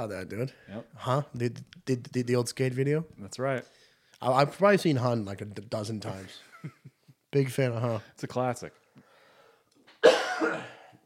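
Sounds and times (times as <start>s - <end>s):
speech: 0.0s - 8.8s
loud cough: 10.0s - 11.0s.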